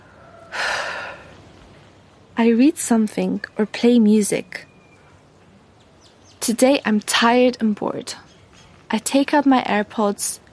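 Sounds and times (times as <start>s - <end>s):
person lying down in a garden taking a deep breath: 0.5s - 1.4s
speech: 2.4s - 4.7s, 6.4s - 8.3s, 8.9s - 10.4s.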